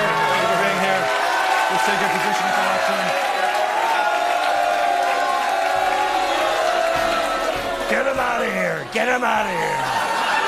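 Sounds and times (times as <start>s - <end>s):
large crowd booing: 0.0s - 10.4s
speech: 1.8s - 3.3s, 8.9s - 10.1s.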